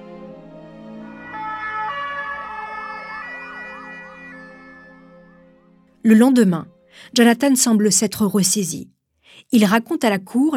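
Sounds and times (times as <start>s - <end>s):
ambulance siren wailing: 0.8s - 6.0s
speech: 6.0s - 10.5s.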